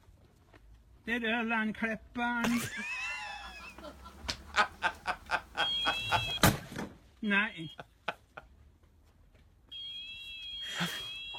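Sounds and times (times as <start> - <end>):
speech: 1.0 - 3.0, 7.2 - 7.9
laughter: 2.4 - 6.4, 10.7 - 11.1
clipper alarm with steady shrill electronic tone: 5.6 - 6.5, 9.7 - 11.3.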